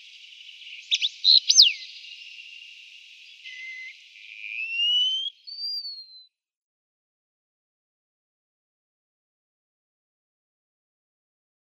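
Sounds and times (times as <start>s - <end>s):
Wallcreeper call thin high whistle: 0.7s - 2.0s, 3.4s - 6.3s.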